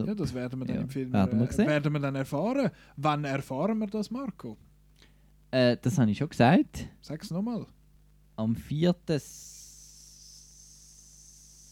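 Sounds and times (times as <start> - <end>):
speech: 0.0 - 4.7, 5.5 - 7.8, 8.4 - 9.6
person hissing like a snake: 9.2 - 11.6.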